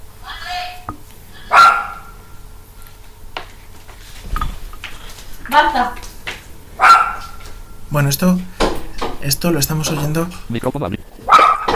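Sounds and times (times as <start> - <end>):
low hum: 0.0 - 11.7
dog barking: 1.5 - 2.2, 6.8 - 7.4, 11.2 - 11.7
speech: 5.6 - 6.0, 7.9 - 8.5, 9.2 - 11.2.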